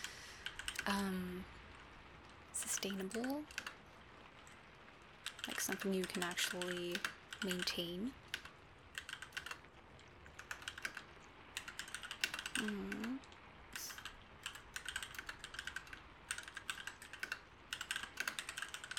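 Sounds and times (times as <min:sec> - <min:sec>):
typing on a computer keyboard: 0:00.4 - 0:00.9, 0:02.6 - 0:03.8, 0:05.2 - 0:18.9
speech: 0:00.9 - 0:01.6, 0:02.6 - 0:03.6, 0:05.5 - 0:08.2, 0:12.6 - 0:13.0.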